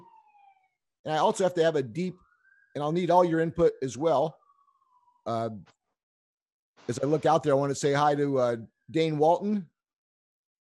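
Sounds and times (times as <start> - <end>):
police siren wailing: 0.0 - 5.7
speech: 1.0 - 2.2, 2.8 - 4.4, 5.2 - 5.8, 6.9 - 9.7.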